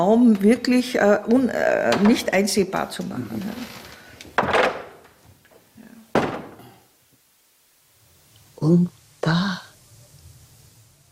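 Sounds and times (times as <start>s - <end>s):
speech: 0.0s - 3.8s, 8.7s - 9.6s
wooden window shutters being closed: 1.8s - 2.6s, 3.7s - 5.4s, 6.1s - 6.8s.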